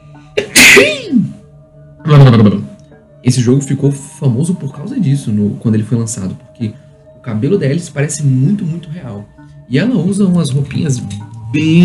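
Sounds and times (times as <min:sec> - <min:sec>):
loud sneeze: 0:00.4 - 0:01.3
speech: 0:00.7 - 0:01.4, 0:02.1 - 0:11.8.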